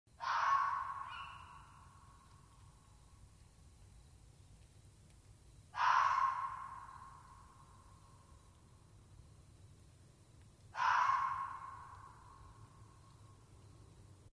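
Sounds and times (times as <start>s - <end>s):
fox barking: 0.2s - 1.8s, 5.8s - 6.9s, 10.7s - 12.2s.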